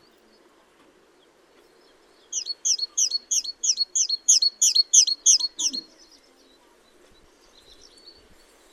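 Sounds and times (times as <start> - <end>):
great tit Parus major calling: 2.3 - 5.9.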